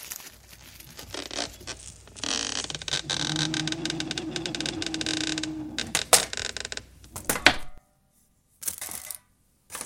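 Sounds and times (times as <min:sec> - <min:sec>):
door creaking open: 0:00.4 - 0:07.8.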